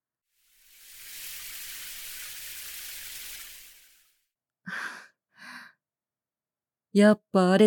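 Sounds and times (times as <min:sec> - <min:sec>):
shower water running: 0:00.4 - 0:04.2.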